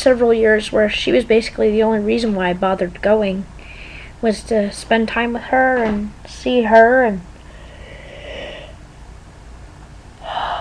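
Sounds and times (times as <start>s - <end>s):
speech: 0.0s - 3.6s, 4.2s - 7.3s
yawn: 7.6s - 8.8s, 10.2s - 10.5s.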